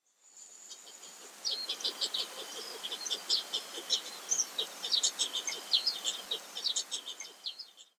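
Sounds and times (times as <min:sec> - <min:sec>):
Black-faced Spoonbill calling in Fukuoka: 0:01.0 - 0:07.9.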